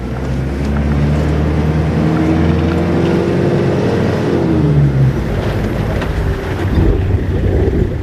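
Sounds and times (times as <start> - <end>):
car engine revving while driving across the Djourab erg: 0.0 - 8.0
wind buffeting the microphone: 4.4 - 8.0.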